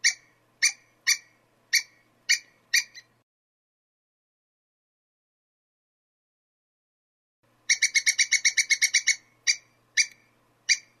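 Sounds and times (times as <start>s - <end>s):
squirrel chattering call: 0.0s - 3.1s, 7.7s - 10.9s.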